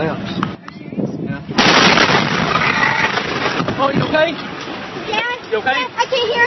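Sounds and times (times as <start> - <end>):
huge explosion of a fertilizer chemical storage facility in West Texas: 1.5 - 4.1
speech: 3.9 - 4.5, 5.5 - 6.4.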